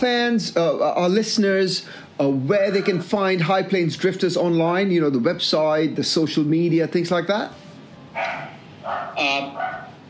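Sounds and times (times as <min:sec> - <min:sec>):
speech: 0:00.0 - 0:07.6, 0:08.2 - 0:09.8
dog barking: 0:08.2 - 0:10.0.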